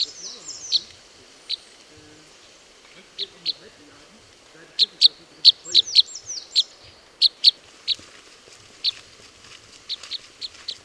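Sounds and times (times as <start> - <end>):
faint high slurred bird notes: 0.0 - 3.8, 4.6 - 8.0
Type N red crossbill flight calls: 0.0 - 9.1, 9.8 - 10.8.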